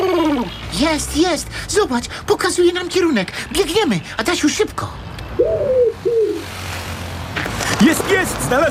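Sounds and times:
speech: 0.8 - 5.0, 7.8 - 8.6
pigeon cooing: 5.4 - 6.5.

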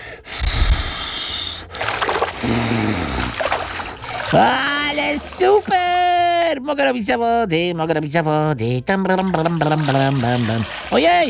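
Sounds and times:
person blowing hard to push a toy sailboat across a pool: 0.0 - 4.1
speech: 2.4 - 3.2, 4.3 - 11.2.

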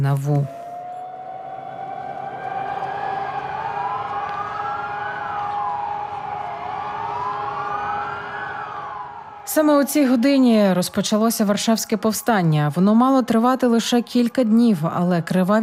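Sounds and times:
speech: 0.0 - 0.6, 9.6 - 15.6
air-raid sirens wailing over Warsaw: 0.0 - 11.4.

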